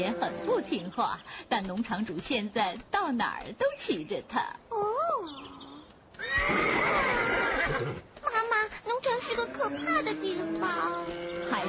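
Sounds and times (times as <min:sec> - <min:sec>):
speech: 0:00.0 - 0:05.5, 0:09.2 - 0:11.6
horse on a farm neighing: 0:06.2 - 0:08.0.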